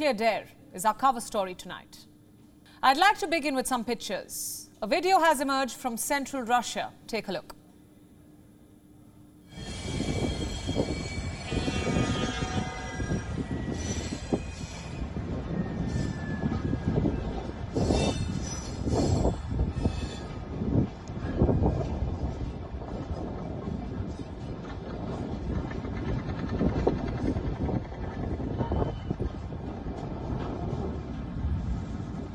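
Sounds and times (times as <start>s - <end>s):
speech: 0.0s - 2.1s, 2.8s - 7.6s
faint metallic squeals of train: 9.5s - 20.4s
train carrying mounted military assets rolling along rails in central Russia: 9.5s - 32.3s.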